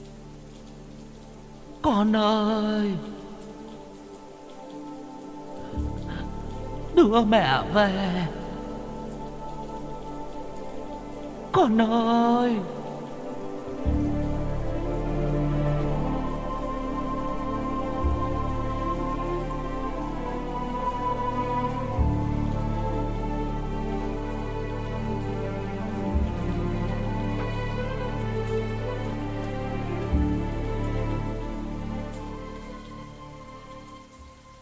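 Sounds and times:
steady downpour of rain on a surface: 0:00.0 - 0:34.5
speech: 0:01.8 - 0:03.2, 0:07.0 - 0:08.4, 0:11.6 - 0:12.8.

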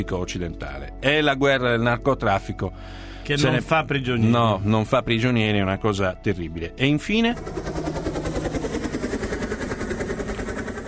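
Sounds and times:
speech: 0:00.0 - 0:07.8
flying drone motor whine: 0:07.3 - 0:10.8.

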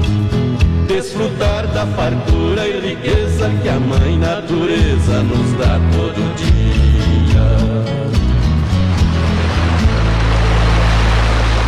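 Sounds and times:
speech: 0:00.9 - 0:08.3
rushing water from a waterfall: 0:08.9 - 0:11.6.

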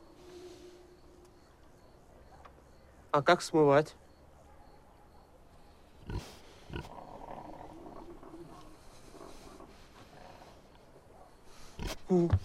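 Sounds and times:
speech: 0:03.1 - 0:04.0
pig squealing: 0:06.0 - 0:10.6
pigs in a pen snuffling and grunting: 0:06.0 - 0:12.4.

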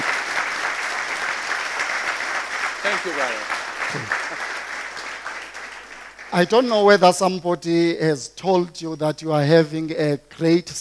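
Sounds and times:
audience applauding in a church: 0:00.0 - 0:06.7
speech: 0:02.8 - 0:04.5, 0:06.3 - 0:10.7.

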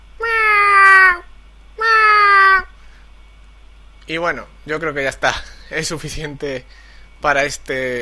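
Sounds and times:
person imitating a cat meowing: 0:00.2 - 0:02.7
speech: 0:04.1 - 0:07.9.

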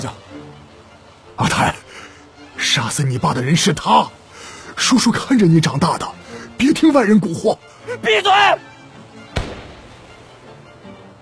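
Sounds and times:
speech: 0:00.0 - 0:00.2, 0:01.4 - 0:01.8, 0:02.8 - 0:04.2, 0:04.8 - 0:08.7
gunshot sound effect of a missed shot fired at a man: 0:09.4 - 0:10.1.

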